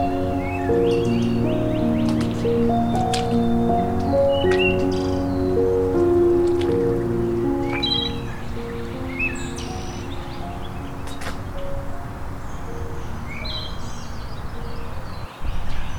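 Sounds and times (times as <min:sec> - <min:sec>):
wood thrush singing: 0:00.0 - 0:13.0
birds chirping faintly: 0:00.0 - 0:15.9.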